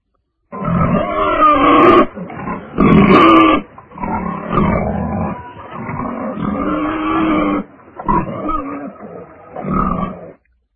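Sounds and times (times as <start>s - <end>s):
pig grunting and snorting: 0.5s - 10.4s.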